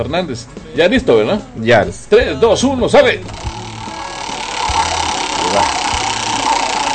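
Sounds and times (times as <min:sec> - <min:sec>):
speech: 0:00.0 - 0:03.4
prize roulette wheel spinning: 0:03.2 - 0:06.9.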